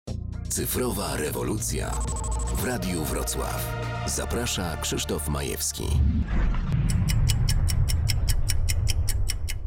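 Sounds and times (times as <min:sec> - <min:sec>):
speech: 0:00.5 - 0:07.0
watch ticking: 0:01.9 - 0:02.7, 0:06.8 - 0:09.6
low constant rumbling hum: 0:06.0 - 0:09.6.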